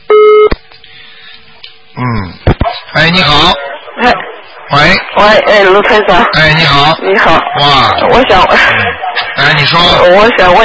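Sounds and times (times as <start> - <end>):
telephone busy tone after a dropped call: 0.1 - 0.6
speech: 3.1 - 10.6.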